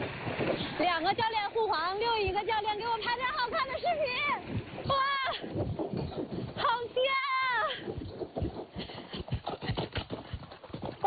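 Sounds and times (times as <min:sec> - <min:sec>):
horse hooves beating on grassland while a beginner rides: 0:00.0 - 0:11.0
speech: 0:00.8 - 0:05.7.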